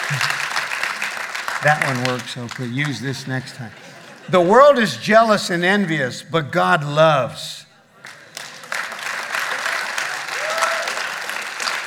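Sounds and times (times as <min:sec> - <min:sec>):
crowd applauding steadily: 0:00.0 - 0:03.7, 0:08.0 - 0:11.8
laughter: 0:00.0 - 0:05.3
speech: 0:00.1 - 0:00.4, 0:01.6 - 0:07.6
faint whistle or cheer: 0:10.4 - 0:11.0.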